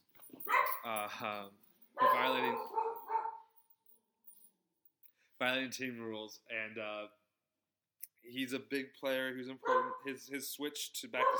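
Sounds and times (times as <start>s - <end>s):
dog barking and yelping: 0.4s - 0.9s, 2.0s - 3.5s, 9.6s - 10.1s, 11.2s - 11.3s
speech: 0.9s - 2.8s, 5.4s - 7.2s, 8.2s - 11.3s.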